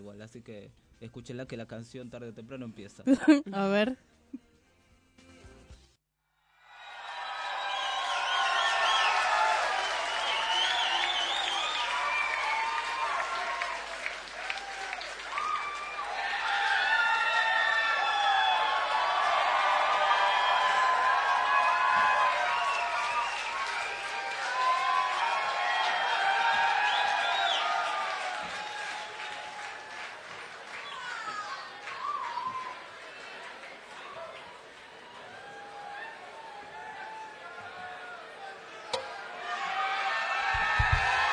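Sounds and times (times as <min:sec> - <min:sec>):
speech: 0:00.1 - 0:04.5
concert audience applause: 0:06.6 - 0:38.2, 0:39.8 - 0:41.3
concert audience whooping: 0:06.7 - 0:32.9, 0:39.1 - 0:41.3.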